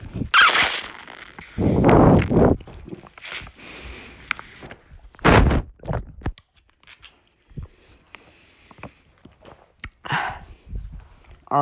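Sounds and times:
mouth noises: 0.1s - 3.6s
slurping juice: 0.3s - 3.6s.

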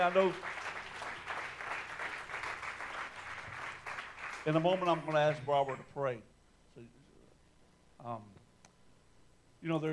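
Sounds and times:
speech: 0.0s - 0.6s, 4.4s - 7.0s, 8.0s - 8.4s, 9.6s - 9.9s
church congregation applause: 0.0s - 5.5s.

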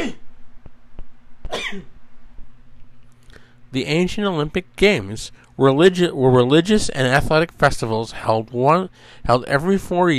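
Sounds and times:
person sneezing: 0.0s - 0.2s
speech: 1.7s - 2.0s, 3.7s - 10.1s
huffing breath burst: 3.2s - 3.6s, 8.9s - 9.3s.

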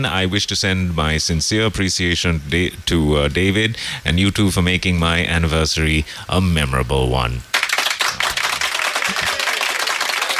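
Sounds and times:
speech: 0.0s - 7.5s
single person clapping hands quickly: 7.5s - 10.3s.

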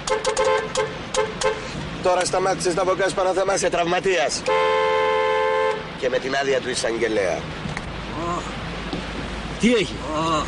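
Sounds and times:
car horn honking: 0.0s - 1.8s, 4.3s - 6.0s
road noise: 0.0s - 10.4s
speech: 2.0s - 4.8s, 6.0s - 7.6s, 9.6s - 10.4s.

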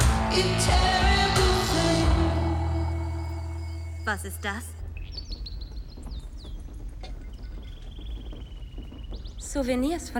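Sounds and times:
steady low rumble: 0.1s - 10.1s
speech: 0.3s - 1.1s, 4.1s - 4.8s, 9.5s - 10.1s
birds chirping and trilling: 0.4s - 10.1s.

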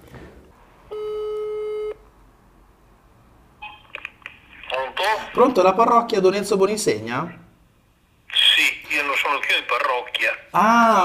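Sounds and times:
loud steady telephone tone: 0.9s - 2.0s
speech: 5.0s - 7.4s, 9.3s - 11.0s.

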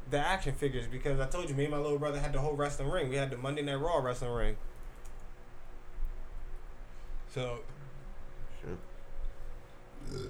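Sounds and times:
faint hum: 0.0s - 10.2s
speech: 0.1s - 4.7s, 7.4s - 7.8s, 8.6s - 8.9s, 10.0s - 10.2s
rough belch-like grunt: 10.0s - 10.2s
short low throaty burp: 10.0s - 10.2s.

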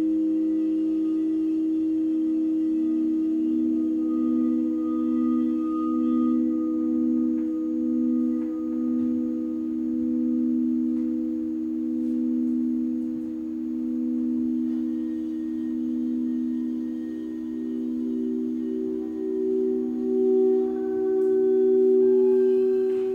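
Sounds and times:
sustained singing bowl tones in a sound bath: 0.0s - 23.1s.

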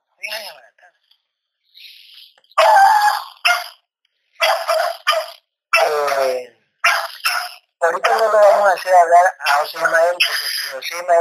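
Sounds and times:
speech: 0.2s - 1.1s, 2.6s - 3.7s, 8.6s - 11.1s
dog barking: 2.6s - 3.8s, 4.4s - 6.2s, 6.8s - 8.2s.

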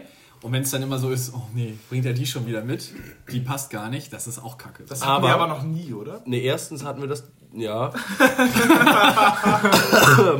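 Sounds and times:
speech: 0.4s - 10.3s
laughter: 8.0s - 10.3s
person coughing with a throaty voiced quality: 9.5s - 10.3s.

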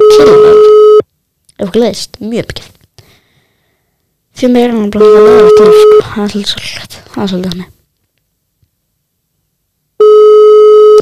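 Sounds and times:
telephone busy signal on an unanswered call: 0.0s - 1.0s, 5.0s - 6.0s, 10.0s - 10.9s
speech: 0.2s - 0.4s, 1.7s - 2.7s, 4.4s - 7.8s.

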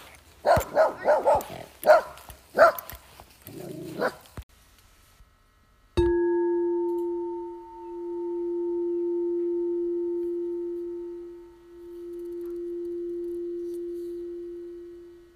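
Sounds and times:
puppy barking on a hiking trail: 0.5s - 2.8s
steady electronic tone: 6.0s - 15.3s.

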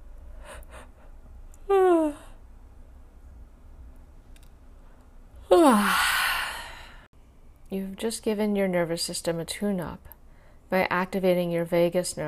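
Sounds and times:
deep yawn with breathy exhale: 5.5s - 7.1s
speech: 7.7s - 12.2s.

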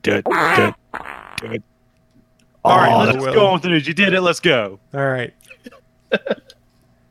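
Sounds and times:
speech: 0.0s - 1.7s, 2.6s - 6.6s
fart sound effect from a soundboard button: 0.3s - 1.6s.

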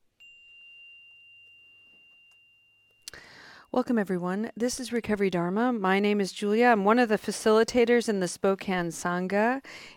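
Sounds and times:
meditation chime ringing: 0.0s - 5.9s
speech: 3.7s - 9.9s.

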